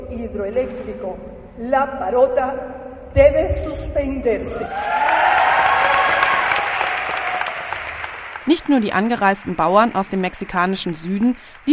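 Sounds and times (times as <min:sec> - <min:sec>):
speech: 0:00.1 - 0:05.4, 0:08.5 - 0:11.7
crowd of participants cheering at a water tribunal: 0:04.5 - 0:11.7.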